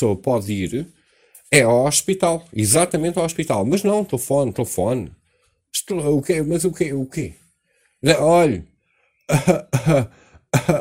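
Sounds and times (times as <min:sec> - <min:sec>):
speech: 0:00.0 - 0:07.4, 0:08.0 - 0:08.7, 0:09.3 - 0:10.7
man coughing: 0:09.3 - 0:10.7.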